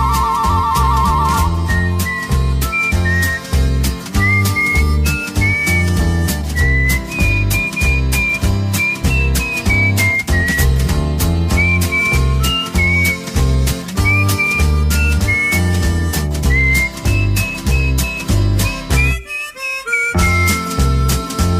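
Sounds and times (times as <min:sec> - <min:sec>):
loud busy musical backing: 0:00.0 - 0:21.5
person practising whistling a wandering melody: 0:00.0 - 0:21.5.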